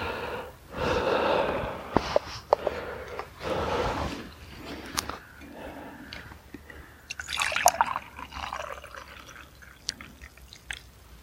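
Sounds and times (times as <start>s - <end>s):
soft breaths: 0.0s - 10.3s
tea pouring into a cup: 7.1s - 10.9s.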